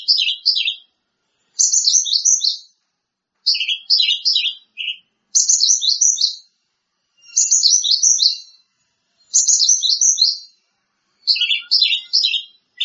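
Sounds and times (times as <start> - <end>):
Greater green leafbird song: 0.0 - 0.9, 1.6 - 2.8, 3.4 - 6.5, 7.2 - 10.6, 11.2 - 12.8.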